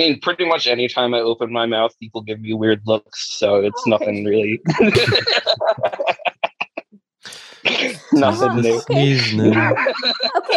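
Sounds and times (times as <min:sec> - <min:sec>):
speech: 0:00.0 - 0:06.2, 0:07.3 - 0:10.5
drawn-out voiced sounds: 0:00.0 - 0:10.5
laughter: 0:00.0 - 0:10.5
person mimicking a sharp breathy sneeze: 0:03.5 - 0:05.2, 0:07.3 - 0:09.7
short choppy breaths: 0:07.3 - 0:07.7.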